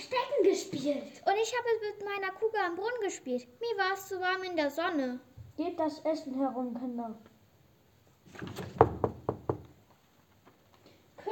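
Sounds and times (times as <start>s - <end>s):
speech: 0.8s - 7.3s, 8.4s - 8.7s
sharp knocks on a door: 8.4s - 9.8s.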